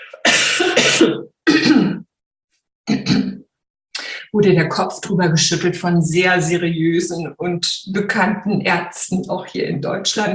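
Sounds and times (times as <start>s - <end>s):
harsh raspy coughs: 0.0s - 2.0s
speech: 0.6s - 1.3s, 4.4s - 10.3s.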